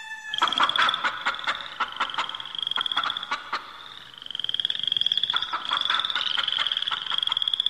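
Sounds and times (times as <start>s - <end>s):
cricket trill: 0.2s - 7.6s
rattling pulsed croaks and clicks: 0.4s - 7.6s.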